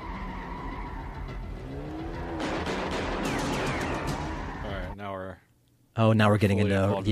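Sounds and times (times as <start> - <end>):
car tyres squealing in a film car chase scene: 0.0 - 5.0
gunfire from a film car chase scene: 2.4 - 4.4
speech: 6.0 - 7.1.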